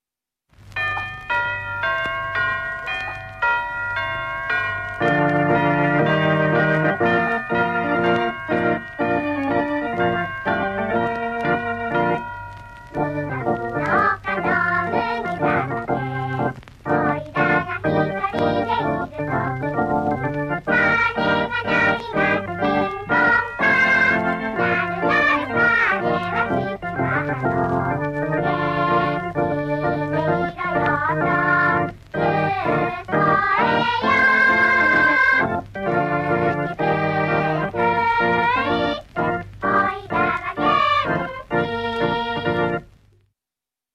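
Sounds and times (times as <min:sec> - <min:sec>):
chiming bell tones of a Japanese song intro: 0:00.8 - 0:13.5
melodic orchestral tune of a Japanese song: 0:01.3 - 0:42.8.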